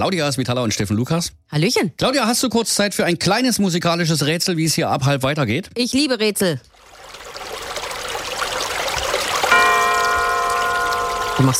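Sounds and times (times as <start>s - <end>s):
speech: 0.0s - 7.0s, 11.4s - 11.5s
brook flowing and babbling: 6.7s - 11.5s
bell struck: 9.5s - 11.5s.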